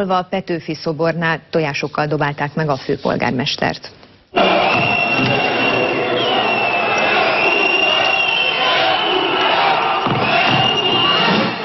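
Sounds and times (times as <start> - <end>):
speech: 0.0 - 4.6
large protesting crowd shouting and jeering: 4.3 - 11.6
sustained whistle-like tone: 4.5 - 9.5, 10.4 - 11.4.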